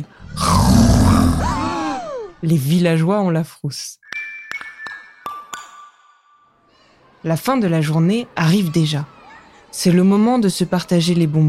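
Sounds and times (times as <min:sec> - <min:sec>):
little monster creature roar at a village carnival: 0:00.2 - 0:02.4
speech: 0:02.4 - 0:04.0, 0:07.2 - 0:11.4.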